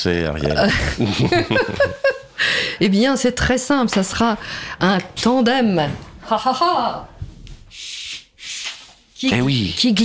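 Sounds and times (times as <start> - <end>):
speech: 0.0 - 7.1, 9.2 - 10.0
laughter: 0.6 - 2.3
sheet of paper sliding across a tabletop: 7.2 - 9.2.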